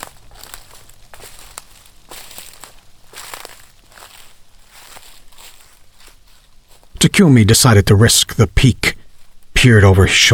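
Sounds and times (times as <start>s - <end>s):
heavy slow footsteps crunching through dry leaves and brush: 0.0s - 7.0s, 9.0s - 9.6s
speech: 7.0s - 9.0s, 9.6s - 10.3s.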